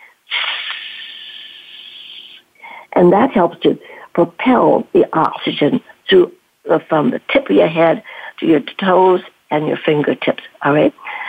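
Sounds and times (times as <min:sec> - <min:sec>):
breath pushed out through clenched teeth: 0:00.3 - 0:02.4
speech: 0:03.0 - 0:11.1.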